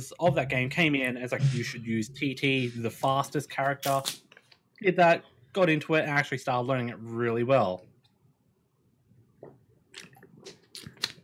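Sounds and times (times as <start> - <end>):
speech: 0.0 - 7.9
person drinking water, gulping and swallowing: 9.9 - 11.2.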